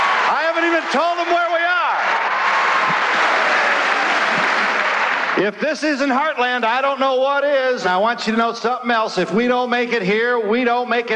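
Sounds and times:
large crowd cheering and applauding in a huge auditorium: 0.0s - 5.6s
speech: 0.6s - 1.5s, 5.4s - 11.1s.

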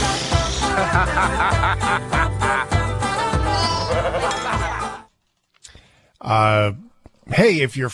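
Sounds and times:
laughter: 0.5s - 5.1s
speech: 0.8s - 2.7s, 6.3s - 7.9s
sheep bleating: 3.4s - 4.4s.

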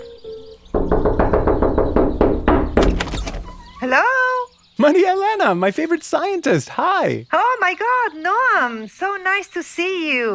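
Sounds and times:
firm knocking on a door: 0.7s - 3.8s
speech: 3.8s - 4.2s, 4.8s - 10.3s.

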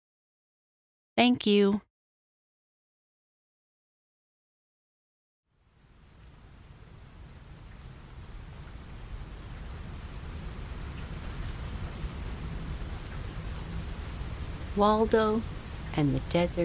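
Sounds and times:
speech: 1.2s - 1.9s, 14.8s - 16.6s
steady rain: 5.5s - 16.6s.

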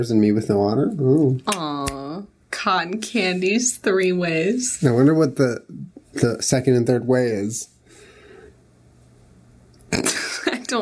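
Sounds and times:
speech: 0.0s - 1.9s, 2.6s - 7.7s, 9.9s - 10.7s
person burping with low throaty rumble: 9.9s - 10.4s.

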